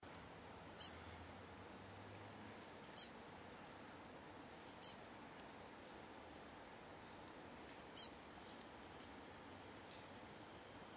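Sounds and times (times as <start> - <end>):
faint low hum: 0.0 - 10.9
bird high downward-slurred chirps: 0.8 - 1.2, 3.0 - 3.3, 4.6 - 5.2, 7.9 - 8.6.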